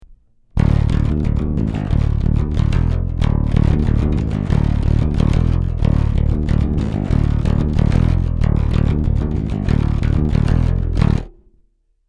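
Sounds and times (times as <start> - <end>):
bass: 0.0 - 11.7.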